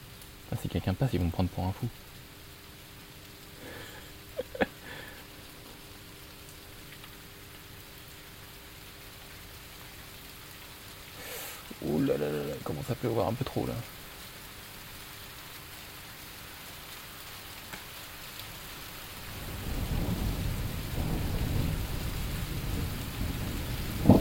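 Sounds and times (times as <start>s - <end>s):
heavy rain pouring: 0.0s - 24.1s
speech: 0.5s - 2.2s, 12.9s - 14.0s
deep rumble of thunder: 19.3s - 24.1s.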